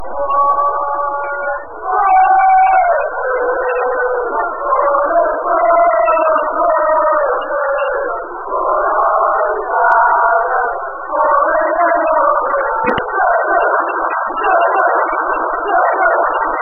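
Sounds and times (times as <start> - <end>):
people chanting: 0.1 - 16.6.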